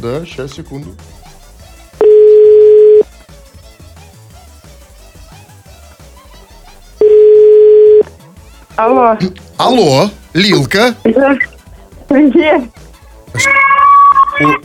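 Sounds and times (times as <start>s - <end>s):
speech: 0.0s - 1.3s, 8.8s - 11.5s, 12.1s - 12.8s, 13.4s - 13.8s, 14.4s - 14.6s
telephone ringback tone beeps: 2.0s - 3.0s, 7.0s - 8.0s, 13.6s - 14.6s.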